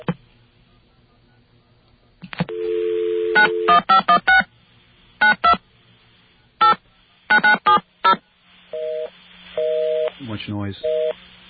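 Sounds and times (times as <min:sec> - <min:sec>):
telephone line static hiss: 0:00.0 - 0:11.4
telephone dial tone: 0:02.5 - 0:03.8
phone ringing tones: 0:02.5 - 0:04.2, 0:08.8 - 0:10.1, 0:10.8 - 0:11.2
speech: 0:10.5 - 0:11.0.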